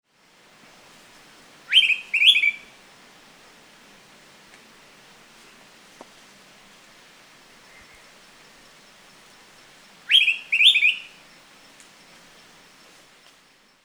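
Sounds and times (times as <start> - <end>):
Araripe manakin: 1.7 - 2.7, 10.1 - 11.2.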